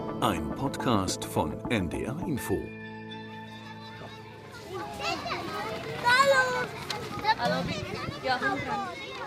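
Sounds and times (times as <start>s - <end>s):
speech: 0.2s - 2.8s
large school class of children chattering: 3.5s - 9.2s.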